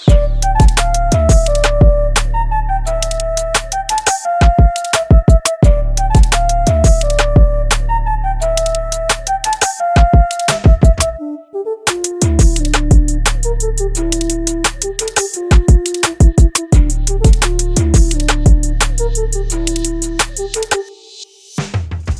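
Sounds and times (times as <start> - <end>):
flute ringtone: 0.0 - 21.4.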